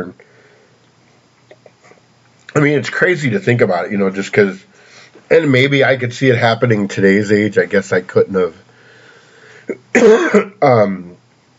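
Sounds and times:
speech: 0.0s - 0.3s, 2.5s - 8.6s, 9.7s - 11.1s
person coughing harshly: 9.6s - 10.9s.

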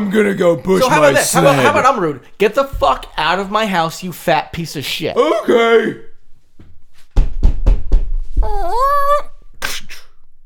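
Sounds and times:
speech: 0.0s - 6.1s
sharp knocks: 7.1s - 8.5s.

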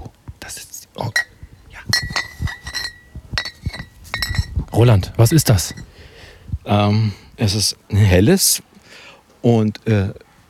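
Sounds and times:
speech: 0.5s - 1.3s, 4.8s - 5.9s, 6.6s - 8.6s, 9.4s - 10.2s
glass beer bottles clinking in a bag in a garden: 1.1s - 4.9s.

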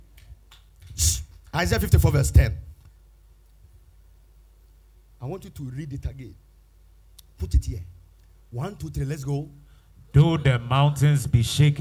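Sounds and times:
person sneezing: 0.9s - 1.3s
speech: 1.0s - 2.7s, 5.2s - 6.4s, 7.4s - 11.7s.

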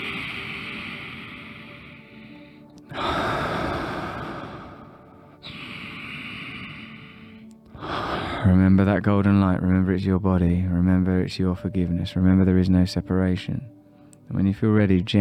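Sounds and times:
deep breath in and released through the mouth during a guided healing meditation: 0.0s - 8.6s
speech: 8.4s - 15.1s.

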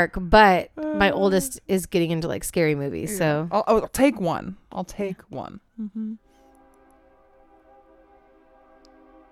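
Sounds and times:
speech: 0.0s - 6.2s
train sound effect droning horn-like chord: 6.2s - 9.3s.

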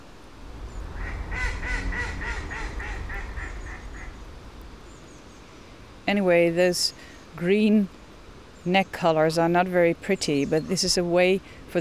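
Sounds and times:
constant low rumble of outdoor noise: 0.0s - 8.7s
Canada geese honking: 0.4s - 4.7s
speech: 6.1s - 8.0s, 8.6s - 11.8s.

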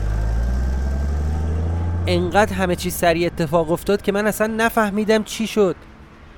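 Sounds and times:
car engine rumbling: 0.0s - 5.4s
speech: 2.1s - 5.9s.

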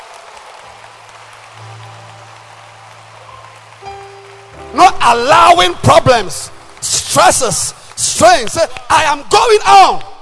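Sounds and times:
crowd clapping hands: 0.0s - 9.6s
speech: 5.0s - 10.1s.

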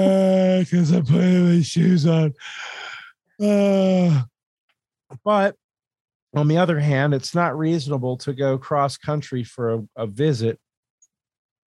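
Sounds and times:
speech: 0.0s - 2.8s, 3.4s - 4.3s, 5.2s - 5.6s, 6.3s - 10.6s
groaning sigh: 2.3s - 4.3s
heavy effortful breathing: 2.4s - 3.2s.

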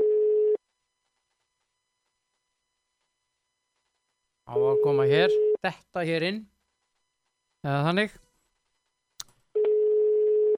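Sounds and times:
telephone dial tone beep while placing a call: 0.0s - 0.6s, 9.6s - 10.5s
speech: 4.5s - 6.5s, 7.6s - 8.2s.

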